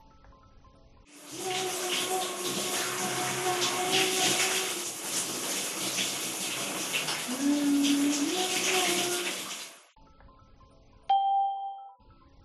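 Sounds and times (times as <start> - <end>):
shower running as a man showers: 1.1 - 9.9
brief bright chime-like tone: 11.1 - 12.0.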